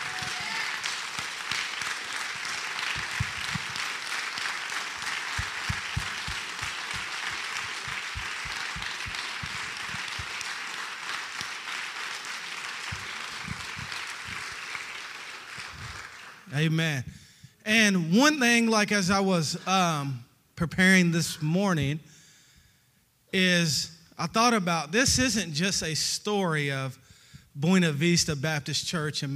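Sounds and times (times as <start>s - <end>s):
audience clapping in sustained applause: 0.0s - 16.5s
speech: 16.6s - 17.1s, 17.7s - 22.1s, 23.3s - 27.0s, 27.6s - 29.3s.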